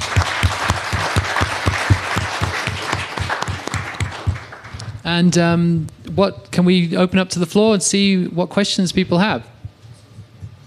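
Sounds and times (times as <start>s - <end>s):
audience applause for panelists: 0.0s - 5.0s
speech: 5.1s - 9.5s.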